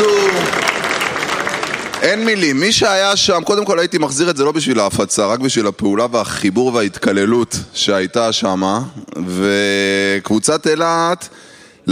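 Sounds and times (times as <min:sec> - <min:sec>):
audience applause: 0:00.0 - 0:02.7
speech: 0:02.0 - 0:11.8.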